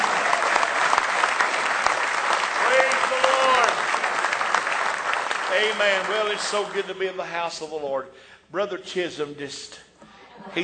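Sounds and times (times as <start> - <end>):
church congregation applauding: 0.0 - 7.2
speech: 5.6 - 10.6.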